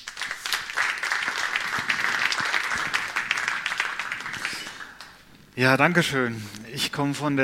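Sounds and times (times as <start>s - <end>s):
audience applause welcoming a speaker: 0.0s - 5.2s
speech: 5.6s - 7.4s.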